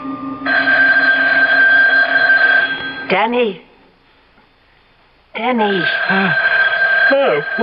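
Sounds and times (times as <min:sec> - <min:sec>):
telephone ringing: 0:00.4 - 0:03.1, 0:05.4 - 0:07.6
speech: 0:03.2 - 0:03.7, 0:05.4 - 0:07.6.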